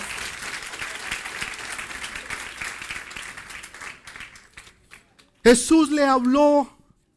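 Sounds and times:
sustained applause from a crowd: 0.0s - 5.5s
speech: 5.5s - 6.8s.

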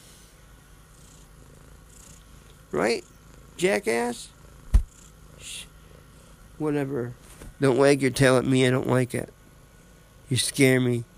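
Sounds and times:
cat purring: 0.7s - 9.0s
speech: 2.7s - 4.4s, 6.6s - 9.4s, 10.3s - 11.1s.

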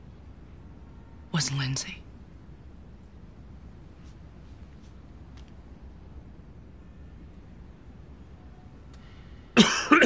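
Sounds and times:
speech: 1.4s - 2.0s
person coughing: 9.6s - 10.0s.

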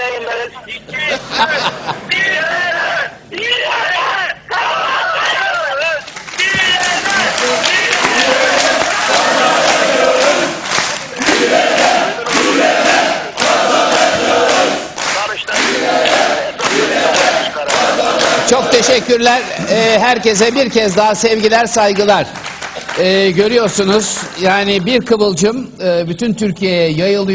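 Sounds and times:
laughter: 0.0s - 2.8s, 6.4s - 20.6s
speech: 0.2s - 2.6s, 18.5s - 22.4s, 23.0s - 27.3s
large crowd chanting a slogan in a hall: 1.4s - 19.7s.

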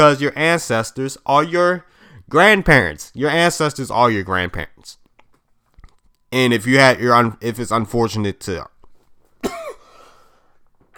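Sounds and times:
speech: 0.0s - 5.0s, 6.3s - 8.8s
harsh cough trailing into a raspy breath: 9.4s - 10.0s.

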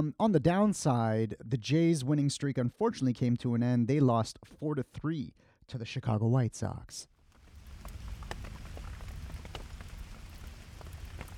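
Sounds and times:
speech: 0.0s - 7.1s
steady rain pattering on a hard surface: 7.2s - 11.3s.

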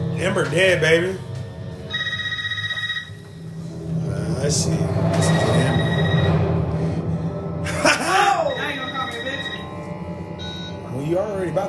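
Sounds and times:
low hum: 0.0s - 11.6s
speech: 0.2s - 1.3s, 4.4s - 5.6s, 11.1s - 11.6s
landline telephone ringing: 1.9s - 3.5s, 5.2s - 6.5s, 8.5s - 10.9s.

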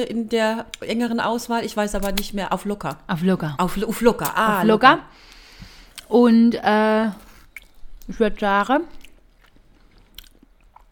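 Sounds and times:
speech: 0.0s - 5.4s, 6.1s - 7.2s, 8.1s - 9.0s
wet smacking and chewing of someone eating: 5.9s - 6.1s, 7.1s - 8.1s, 8.9s - 10.9s.

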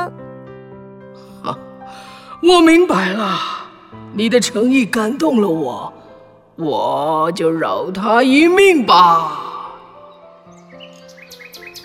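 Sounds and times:
speech: 1.4s - 3.6s, 4.2s - 6.0s, 6.6s - 9.5s
nightingale singing a light lilting tune: 8.9s - 11.8s.

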